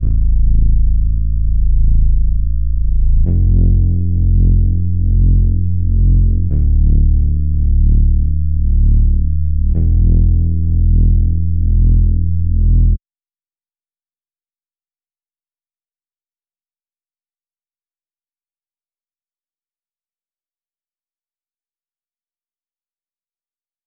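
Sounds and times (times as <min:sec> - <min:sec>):
bass line in A minor at 148 BPM: 0:00.0 - 0:13.0.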